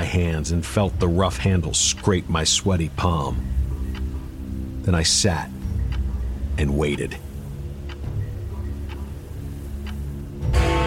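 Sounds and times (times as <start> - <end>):
clock ticking: 0.0 - 10.8
low droning hum: 0.0 - 10.8
speech: 0.2 - 3.6, 4.8 - 5.6, 6.6 - 7.2
clock striking like a gong: 8.1 - 10.8.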